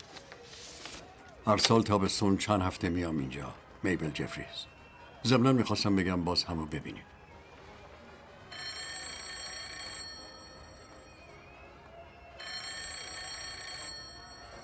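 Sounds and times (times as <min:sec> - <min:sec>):
speech: 0:01.5 - 0:07.1
private-line telephone bell ringing in a hotel: 0:08.5 - 0:11.6, 0:12.2 - 0:14.6.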